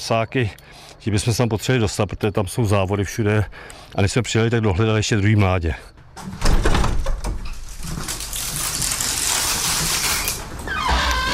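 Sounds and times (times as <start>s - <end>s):
speech: 0.0s - 6.7s
soft clunk of a wire aviary door: 6.1s - 7.7s
wire aviary door scraping and rattling as it slides open: 6.2s - 11.3s.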